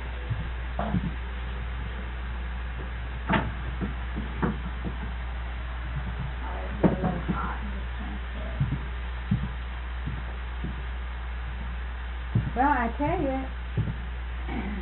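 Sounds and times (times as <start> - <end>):
steady low electrical hum: 0.0 - 14.8
rustles and light knocks from transferring crimped oats from small bags: 0.1 - 14.2
faint murmuring: 5.7 - 10.5, 12.5 - 14.8
speech: 12.6 - 13.6.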